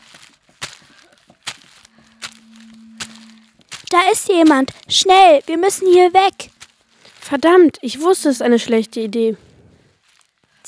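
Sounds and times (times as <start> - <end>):
crisp footsteps: 0.0 - 7.3
low steady hum: 1.0 - 7.6
speech: 3.9 - 6.5, 7.3 - 9.4.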